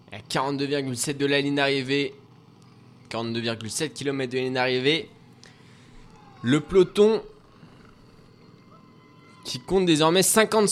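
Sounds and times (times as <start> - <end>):
low-flying helicopter rotor roar overhead: 0.0 - 10.7
speech: 0.3 - 2.2, 3.1 - 5.2, 6.4 - 7.3, 9.4 - 10.7.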